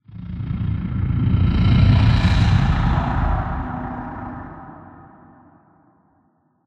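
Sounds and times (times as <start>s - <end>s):
interior roar: 0.1s - 5.4s.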